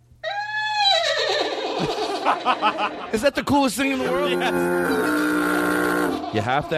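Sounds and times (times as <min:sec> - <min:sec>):
voice imitating horse whinny: 0:00.2 - 0:02.2, 0:04.0 - 0:06.7
laughter: 0:01.1 - 0:04.4
speech: 0:01.8 - 0:05.4, 0:06.3 - 0:06.7.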